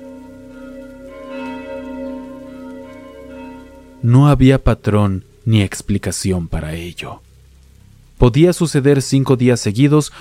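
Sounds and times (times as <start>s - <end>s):
church bells ringing: 0.0s - 5.0s
speech: 4.0s - 7.3s, 8.2s - 10.1s.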